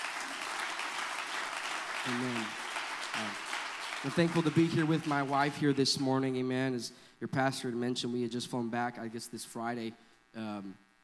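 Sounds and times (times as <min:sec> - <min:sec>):
audience clapping hands: 0:00.0 - 0:06.4
speech: 0:02.0 - 0:03.4, 0:04.0 - 0:10.8.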